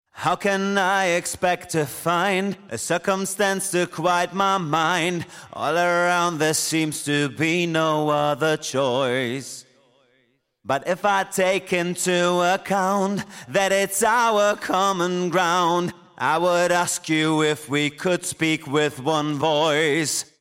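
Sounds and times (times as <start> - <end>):
dry male backing vocals: 0.1 - 9.8, 10.7 - 20.3.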